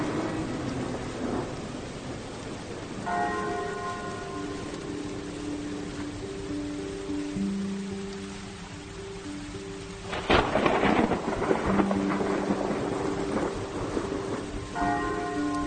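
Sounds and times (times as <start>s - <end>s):
thunderclap rolling into rumble: 0.0s - 6.6s, 10.0s - 15.6s
heavy rain: 0.0s - 15.6s.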